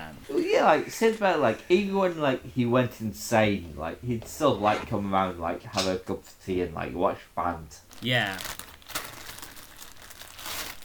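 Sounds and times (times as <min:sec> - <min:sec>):
speech: 0:00.6 - 0:08.6
plastic bags crinkling and rustling while wrapping belongings: 0:07.9 - 0:10.8.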